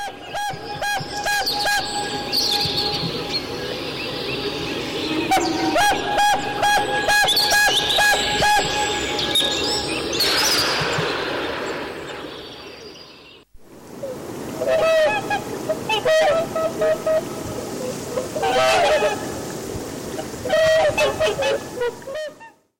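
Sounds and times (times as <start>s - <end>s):
whooper swans trumpeting: 0.0s - 10.2s, 14.6s - 22.5s
steady outdoor hiss: 0.0s - 22.7s.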